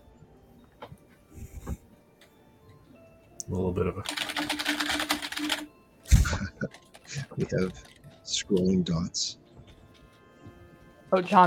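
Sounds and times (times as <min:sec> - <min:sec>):
speech: 0:03.5 - 0:04.5, 0:07.4 - 0:09.4, 0:11.1 - 0:11.4
computer keyboard keys clattering: 0:04.0 - 0:05.7, 0:06.3 - 0:08.8.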